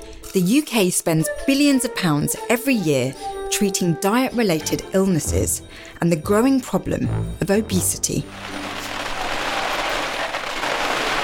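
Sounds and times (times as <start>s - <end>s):
speech: 0.4s - 8.8s
heavy rain pouring during a thunderstorm: 7.8s - 11.2s.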